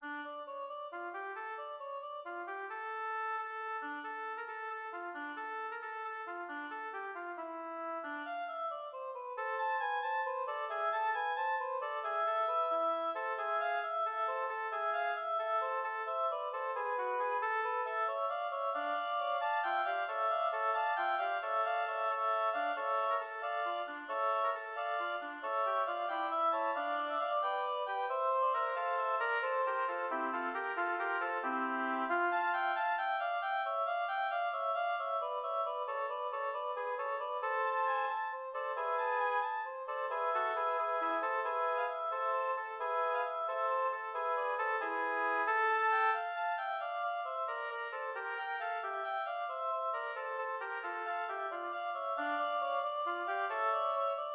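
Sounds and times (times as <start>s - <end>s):
oboe trio playing a fugue: 0.0s - 54.3s.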